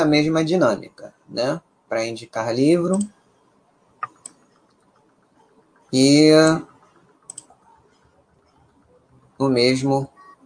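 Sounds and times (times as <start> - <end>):
speech: 0.0 - 3.2, 5.9 - 6.7, 9.4 - 10.1
computer mouse clicks: 2.9 - 3.2, 4.0 - 6.0, 6.6 - 9.4.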